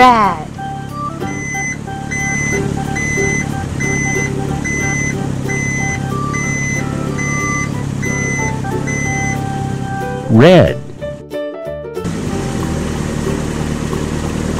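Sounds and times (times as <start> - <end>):
green garbage truck engine rumble: 0.0 - 11.2, 12.0 - 14.5
green garbage truck reversing beeps: 0.5 - 10.2
speech: 10.4 - 10.8.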